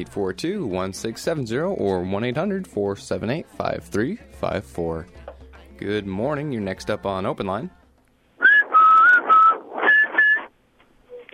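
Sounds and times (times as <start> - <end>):
speech: 0.0 - 5.2, 5.8 - 7.8
loud whistled tune of sustained notes with a breathy rasp: 8.4 - 10.5.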